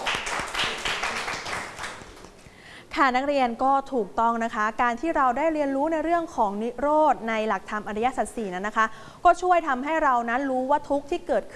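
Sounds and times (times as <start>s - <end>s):
students in a classroom clapping hands for a classmate: 0.0s - 2.5s
speech: 3.0s - 11.5s.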